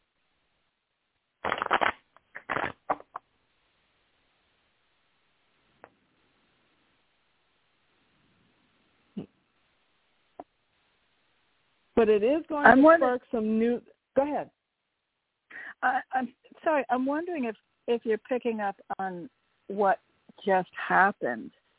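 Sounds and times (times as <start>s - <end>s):
tarot cards shuffling: 1.4s - 3.2s
speech: 12.0s - 14.6s, 15.8s - 21.6s.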